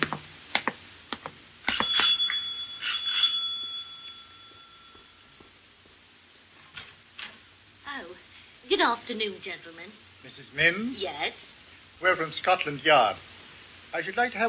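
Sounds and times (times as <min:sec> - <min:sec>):
front doorbell ringing with a metallic tone: 0:01.7 - 0:05.5
speech: 0:08.7 - 0:13.3, 0:13.9 - 0:14.4.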